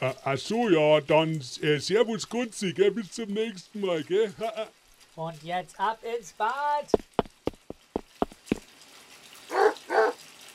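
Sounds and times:
speech: 0.0 - 7.1
sharp knocking or tapping: 7.0 - 8.6
dog barking in a bathtub: 9.5 - 10.2.

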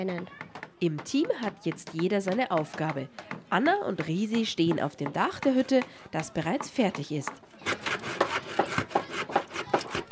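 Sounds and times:
speech: 0.0 - 7.5
saw cutting wooden boards on a hut roof: 7.6 - 10.0.

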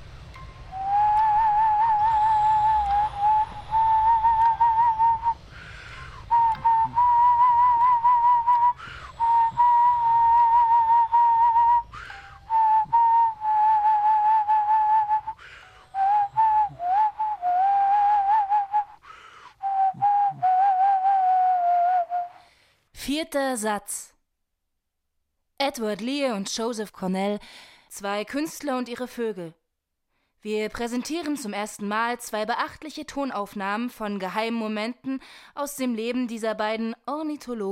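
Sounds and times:
person whistling a melodic tune: 0.4 - 22.5
speech: 23.2 - 24.1, 25.7 - 29.6, 30.4 - 37.7.

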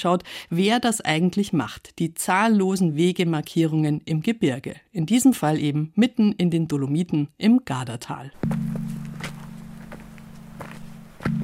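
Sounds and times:
speech: 0.0 - 8.8
footsteps crunching on loose dolomite scree: 8.4 - 11.4
low hum: 8.4 - 11.4.

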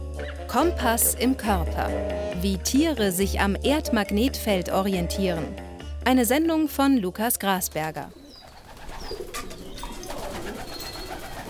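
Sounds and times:
speech: 0.5 - 8.2
flock of white pigeons cooing in a loft: 8.1 - 11.4
pigeon wing flapping in a loft: 8.2 - 11.4.

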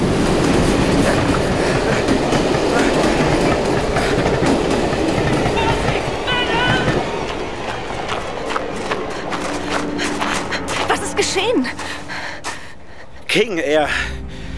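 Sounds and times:
train wheels clattering: 0.0 - 11.4
train rumbling past on railway tracks: 0.0 - 14.5
speech: 13.4 - 14.2.

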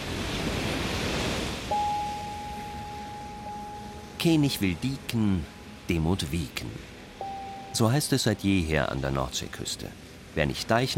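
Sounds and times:
sea waves surging: 0.0 - 10.9
thin steady high-pitched tone: 1.7 - 8.5
speech: 4.2 - 6.9, 7.7 - 10.9.

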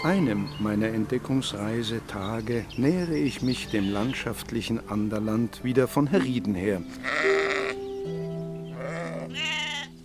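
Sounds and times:
speech: 0.0 - 7.4
sheep bleating in a pasture: 6.9 - 7.8, 8.7 - 10.0.

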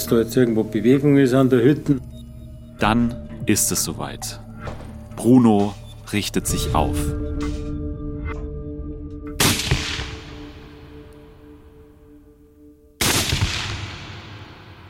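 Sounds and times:
speech: 0.0 - 2.1, 2.8 - 4.4, 5.2 - 7.6
gunshots: 9.4 - 10.8, 13.0 - 14.8.

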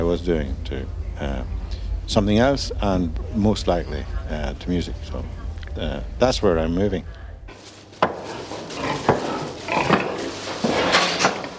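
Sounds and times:
speech: 0.0 - 7.2
steady indoor rumble: 0.0 - 11.5
pigs grunting and snorting in a crowded pig-fattening barn: 8.0 - 11.5.

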